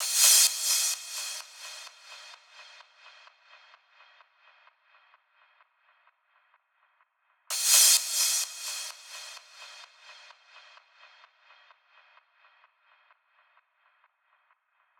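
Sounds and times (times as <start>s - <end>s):
crash cymbal loop in a future house EDM drum loop: 0.0s - 4.2s, 7.5s - 12.5s.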